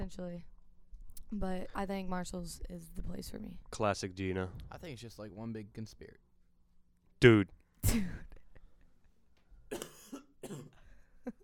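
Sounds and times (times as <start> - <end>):
speech: 0.1 - 0.5, 1.3 - 6.2, 7.2 - 8.3
dry coughing from an irritated throat: 7.8 - 8.4, 9.7 - 10.9.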